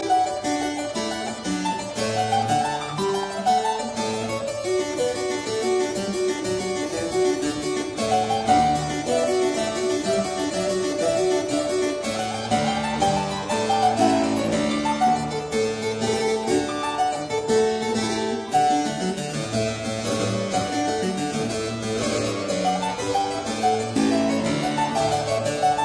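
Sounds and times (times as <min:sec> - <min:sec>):
keyboard sonata in G major: 0:00.0 - 0:25.8.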